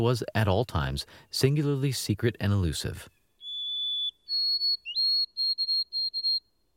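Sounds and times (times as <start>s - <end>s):
speech: 0.0s - 3.2s
white-throated sparrow whistled song: 3.0s - 6.7s.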